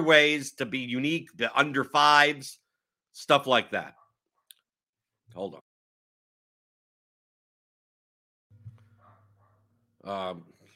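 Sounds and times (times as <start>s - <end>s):
speech: 0.0s - 2.6s, 3.2s - 4.0s, 5.3s - 5.6s, 10.0s - 10.5s
dog barking: 3.9s - 4.2s, 8.9s - 9.7s.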